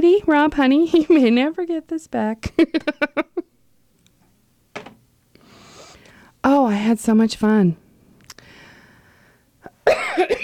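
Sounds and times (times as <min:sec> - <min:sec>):
speech: 0:00.2 - 0:03.4, 0:06.4 - 0:07.8, 0:09.9 - 0:10.4
person coughing: 0:09.8 - 0:10.4.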